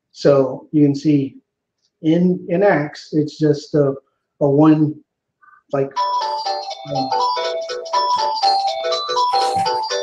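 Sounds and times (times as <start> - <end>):
speech: 0.2 - 1.4, 2.0 - 5.0, 5.7 - 6.2, 6.8 - 7.3
melodic phone ringtone: 5.9 - 10.0.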